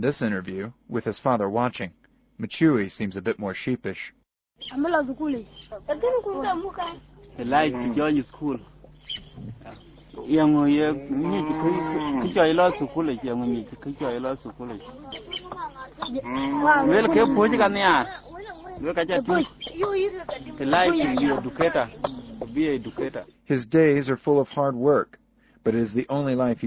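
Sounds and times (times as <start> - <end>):
speech: 0.0 - 26.6
cattle lowing at a cattle camp in southern Sudan: 7.4 - 8.3, 10.2 - 13.1, 16.0 - 18.1.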